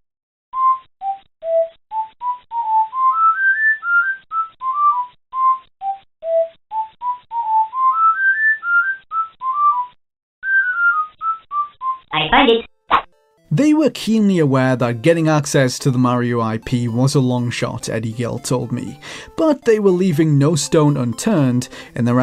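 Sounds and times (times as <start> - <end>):
whistled video game theme melody: 0.5 - 12.1
speech: 12.3 - 12.7, 13.8 - 22.2.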